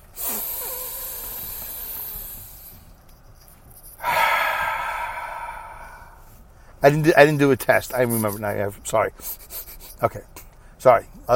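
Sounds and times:
deep breaths during a guided breathing exercise: 0.2s - 2.9s, 4.0s - 6.8s
speech: 6.8s - 11.3s.

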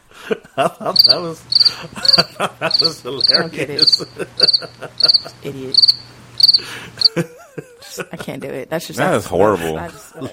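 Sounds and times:
laughter: 0.0s - 5.8s, 6.6s - 8.4s, 9.6s - 10.3s
speech: 0.3s - 7.4s, 8.0s - 10.3s
cricket chirping: 1.0s - 7.2s
voice murmuring: 1.1s - 5.8s.

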